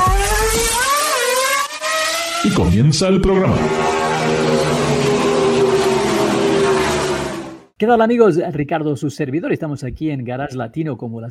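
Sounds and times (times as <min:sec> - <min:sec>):
car engine revving as the car accelerates away in first gear: 0:00.0 - 0:07.8
speech: 0:02.4 - 0:04.6, 0:07.8 - 0:11.2.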